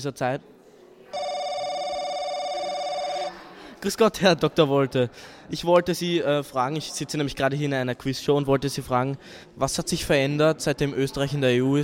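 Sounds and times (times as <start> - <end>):
speech: 0.0 - 0.5, 3.8 - 11.8
electronic telephone ring tone as a quiz-show lifeline call goes out: 1.2 - 3.5.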